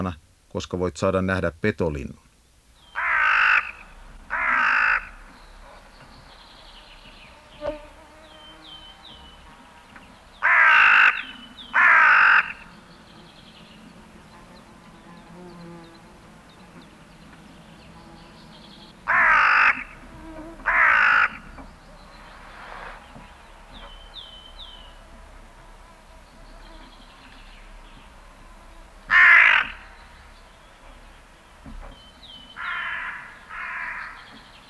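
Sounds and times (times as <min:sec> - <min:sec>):
speech: 0:00.0 - 0:02.2
hooded crow cawing: 0:02.8 - 0:07.4, 0:08.4 - 0:14.8, 0:16.1 - 0:23.0, 0:27.6 - 0:30.6, 0:32.5 - 0:34.5.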